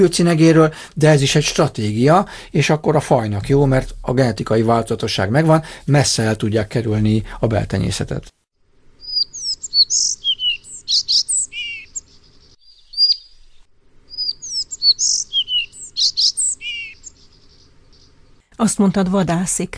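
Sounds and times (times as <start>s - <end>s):
speech: 0.0s - 8.4s, 18.6s - 19.7s
collared flycatcher singing squeaky whistles and trills: 9.0s - 18.2s.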